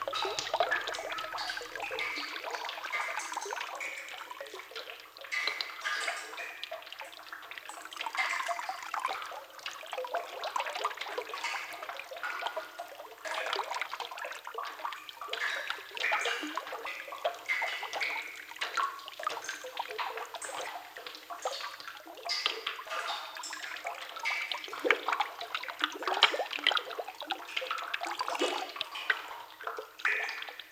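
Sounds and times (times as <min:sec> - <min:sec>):
water flowing softly: 0:00.0 - 0:30.6.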